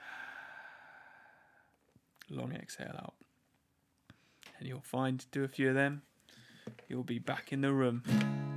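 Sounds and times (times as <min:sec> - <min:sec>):
deep breath inhale: 0:00.0 - 0:01.6
speech: 0:02.3 - 0:03.3, 0:04.6 - 0:08.4.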